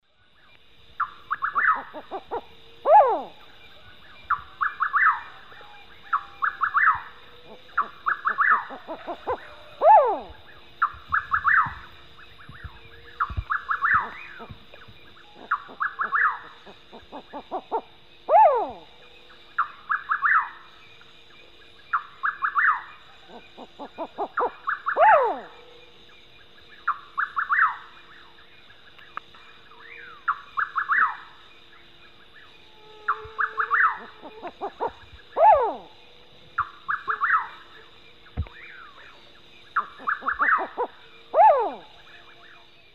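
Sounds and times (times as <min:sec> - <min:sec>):
Ciccaba huhula owl calling in the Eastern Lowlands of South America: 0:01.0 - 0:18.9, 0:21.9 - 0:25.7, 0:26.8 - 0:27.9, 0:29.9 - 0:31.3, 0:32.4 - 0:38.9, 0:39.7 - 0:42.9.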